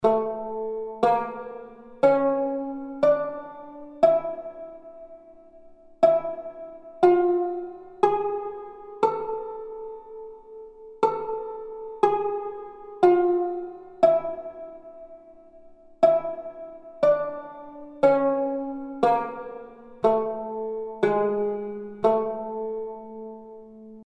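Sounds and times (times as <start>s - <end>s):
tanbur playing in zirgüle mode: 0.0s - 24.0s.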